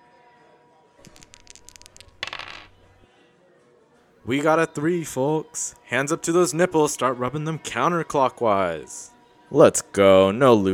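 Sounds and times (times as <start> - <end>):
dice clattering across a hard surface: 1.0 - 3.0
speech: 4.3 - 10.7.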